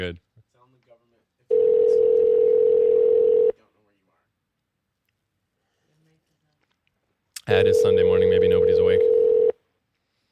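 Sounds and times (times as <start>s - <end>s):
speech: 0.0s - 0.2s, 7.5s - 9.2s
electronic ringback tone from an outgoing phone call on the receiver: 1.5s - 3.6s, 7.6s - 9.6s.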